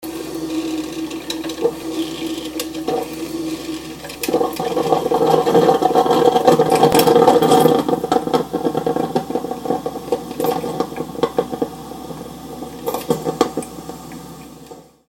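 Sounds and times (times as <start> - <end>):
coffee machine: 0.0 - 15.0.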